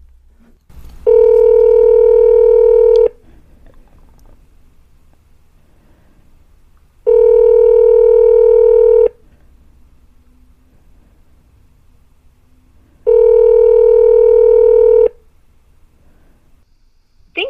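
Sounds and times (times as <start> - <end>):
telephone call ringing on the line: 1.0 - 3.2, 7.0 - 9.2, 13.0 - 15.2.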